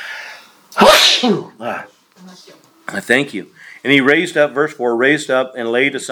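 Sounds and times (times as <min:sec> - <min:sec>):
person sneezing: 0:00.8 - 0:01.8
speech: 0:01.2 - 0:06.1.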